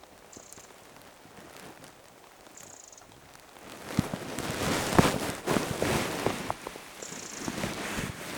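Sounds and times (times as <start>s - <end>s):
young goldcrest contact calls: 0.3s - 0.8s, 3.7s - 8.3s.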